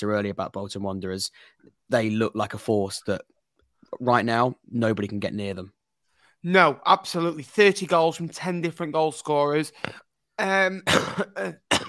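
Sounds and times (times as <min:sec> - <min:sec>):
speech: 0:00.0 - 0:03.3, 0:03.9 - 0:05.8, 0:06.4 - 0:11.8
man clearing throat: 0:10.8 - 0:11.8
man coughing: 0:10.8 - 0:11.8.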